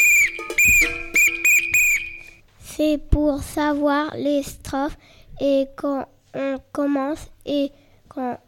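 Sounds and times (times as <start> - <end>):
shrill apito whistle blasts as a choir leader's signal call: 0.0 - 2.4
speech: 2.8 - 8.4.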